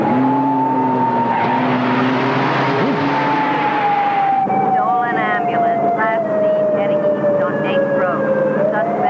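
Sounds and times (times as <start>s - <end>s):
tire squeal: 0.0s - 4.6s
car engine roaring as the car drives off fast: 0.0s - 9.0s.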